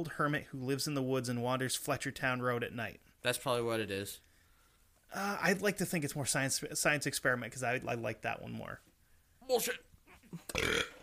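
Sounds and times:
speech: 0.0 - 4.3, 5.1 - 8.9, 9.5 - 10.9
loud gurgling burp: 10.5 - 11.0.

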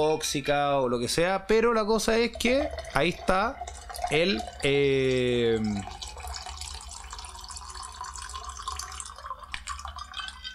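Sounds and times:
speech: 0.0 - 6.0
person drinking water on a very hot day: 2.6 - 10.5.

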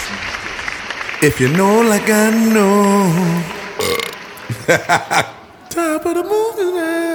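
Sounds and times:
speech: 1.2 - 3.6, 4.7 - 7.0
person burping after drinking carbonated water: 3.8 - 4.2
laughter: 4.4 - 5.7.

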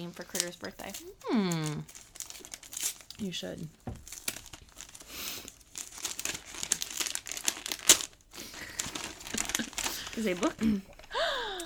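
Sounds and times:
jungle-patterned wrapping paper crinkling and tearing as a gift is unwrapped: 0.0 - 11.6
speech: 0.1 - 2.1, 3.2 - 4.1, 10.2 - 11.0.

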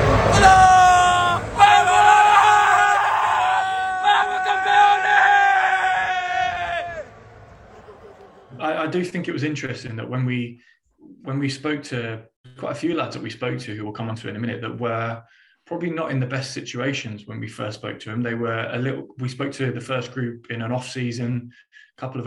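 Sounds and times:
group of young men shouting a rowdy celebration chant: 0.2 - 7.1
speech: 9.0 - 22.2.

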